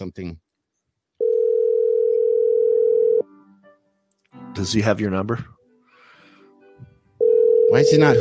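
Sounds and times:
speech: 0.1s - 0.4s, 4.6s - 5.6s, 7.7s - 8.1s
telephone dial tone during outgoing call: 1.2s - 3.2s, 7.2s - 8.1s.

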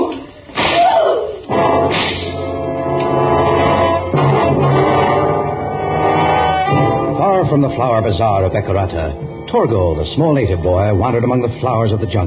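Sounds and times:
loud sharp whip cracks: 0.5s - 1.2s, 1.9s - 2.5s
dense sustained musical drone: 1.5s - 12.2s
speech: 7.6s - 12.2s.

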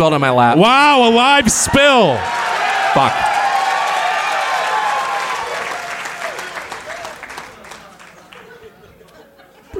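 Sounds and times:
speech: 0.0s - 3.3s
live audience cheering and clapping: 1.5s - 8.6s
whoops: 2.2s - 7.2s
laughter: 5.0s - 9.7s.

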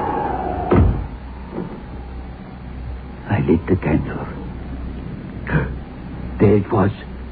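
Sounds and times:
slightly hissy background: 0.0s - 7.3s
door shutting with a solid thud in windy weather: 0.4s - 1.9s
speech: 3.4s - 4.4s, 6.4s - 7.1s.

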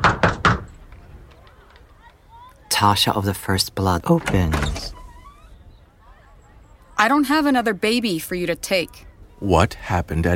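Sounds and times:
fist pounding on a door: 0.0s - 0.7s
speech: 2.8s - 5.0s, 7.0s - 10.3s.

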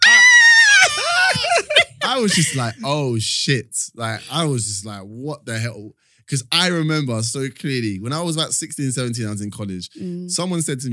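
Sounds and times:
voice imitating a loud high-pitched scream: 0.0s - 1.6s
laughter: 0.0s - 3.4s, 4.0s - 4.9s
speech: 2.2s - 10.9s.

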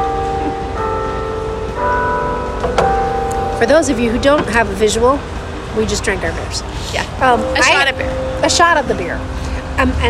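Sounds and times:
church bells ringing: 0.0s - 10.0s
speech: 3.6s - 10.0s.

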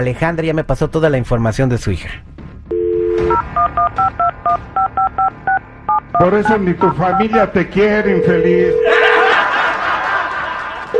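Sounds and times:
speech: 0.0s - 2.4s, 3.6s - 5.4s, 6.1s - 9.0s
telephone dial tone: 2.7s - 3.9s
touch-tone keypad dialing a telephone number: 2.7s - 7.5s
laughter: 8.8s - 10.9s.

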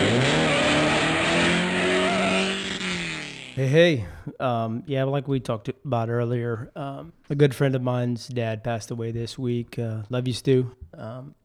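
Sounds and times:
car engine revving and accelerating: 0.0s - 3.6s
speech: 3.6s - 11.4s.

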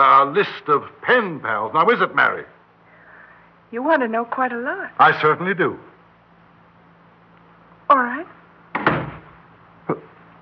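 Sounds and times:
speech: 0.0s - 2.6s, 3.7s - 5.9s, 7.9s - 8.4s
door swinging shut with a resonant thud: 8.7s - 9.4s.

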